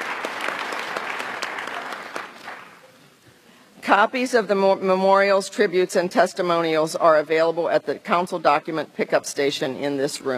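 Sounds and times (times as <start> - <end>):
audience applauding award recipients: 0.0 - 2.8
speech: 3.9 - 10.3.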